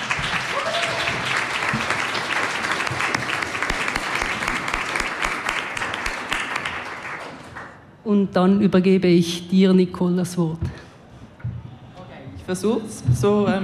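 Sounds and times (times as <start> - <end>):
audience applause: 0.0 - 7.8
speech: 8.1 - 10.8, 12.5 - 13.6.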